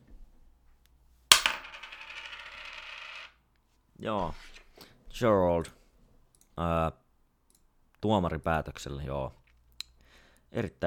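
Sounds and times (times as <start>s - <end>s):
tossed coin striking a hard surface and spinning: 1.3s - 3.4s
speech: 4.0s - 4.6s, 5.2s - 5.8s, 6.6s - 7.0s, 8.0s - 9.4s, 10.5s - 10.8s.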